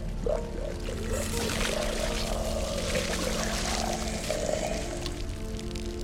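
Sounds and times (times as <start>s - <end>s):
liquid leaking out of a creature's body: 0.7s - 6.0s.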